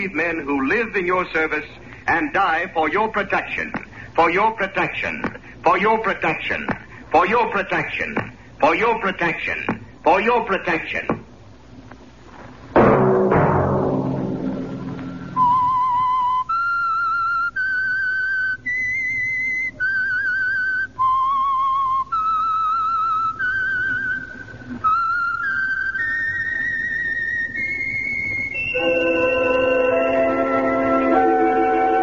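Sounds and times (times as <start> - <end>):
speech: 0.0 - 11.2
struck ringing chord: 12.8 - 16.1, 28.7 - 32.0
whistled theme melody: 15.1 - 32.0.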